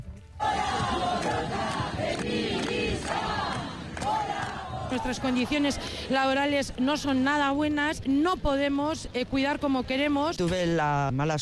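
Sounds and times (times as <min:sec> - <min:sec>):
large crowd chanting and shouting at a street demonstration in the Basque Country: 0:00.3 - 0:06.8
sharp claps: 0:00.6 - 0:05.0
speech: 0:04.9 - 0:11.4.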